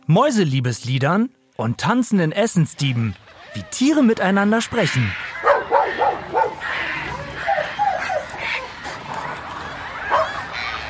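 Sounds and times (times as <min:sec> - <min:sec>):
speech: 0:00.1 - 0:05.2
dog barking in short sharp bursts: 0:05.4 - 0:09.4, 0:10.0 - 0:10.5.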